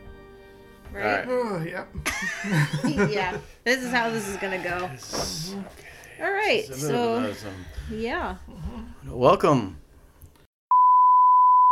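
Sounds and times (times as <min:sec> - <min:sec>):
speech: 0:00.9 - 0:09.8
laughter: 0:02.0 - 0:05.7
censor bleep over a word: 0:10.7 - 0:11.7.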